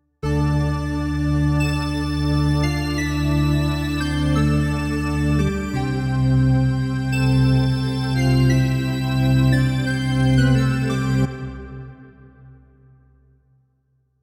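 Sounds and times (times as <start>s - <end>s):
Yamaha Reface YC keyboard: 0.2s - 12.6s.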